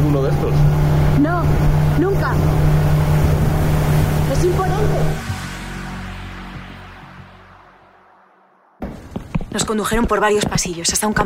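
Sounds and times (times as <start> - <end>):
rushing wash of water from a large ship at sea: 0.0 - 7.8
aircraft carrier engine drone under way at sea: 0.0 - 8.8
speech: 9.6 - 11.2.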